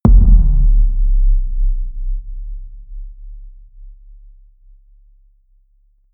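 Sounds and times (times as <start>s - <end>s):
impact hits: 0.0s - 4.9s
bass drop: 0.0s - 5.1s.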